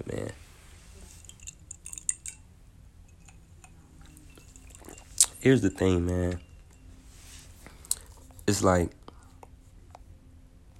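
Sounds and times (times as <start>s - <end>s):
small clinks and wet clicks: 1.1s - 2.5s, 3.1s - 7.0s
sipping a drink from a glass: 4.1s - 5.4s
speech: 5.4s - 6.5s, 8.5s - 9.0s.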